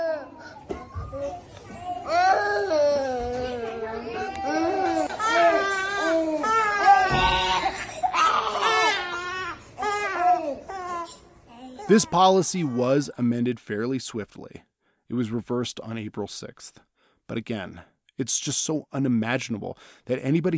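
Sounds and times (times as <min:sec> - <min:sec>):
several infants crying in a hospital nursery: 0:00.0 - 0:13.0
speech: 0:11.9 - 0:20.5.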